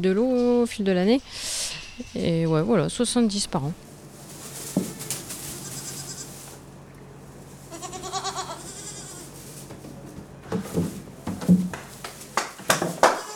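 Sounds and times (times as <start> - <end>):
speech: 0.0 - 3.9
shuffling and knocking noises in a barn: 0.0 - 13.3
young goats bleating in a barn: 4.4 - 10.5, 13.0 - 13.3.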